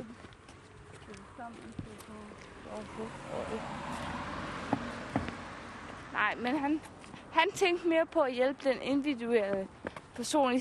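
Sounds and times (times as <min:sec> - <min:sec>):
car passing on a nearby road: 0:00.4 - 0:08.2
speech: 0:01.5 - 0:04.2, 0:06.2 - 0:10.6.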